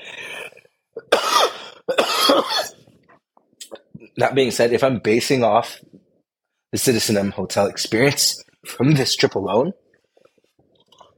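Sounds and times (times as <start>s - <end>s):
harsh raspy coughs: 1.0s - 2.9s
speech: 4.2s - 5.9s, 6.7s - 9.8s.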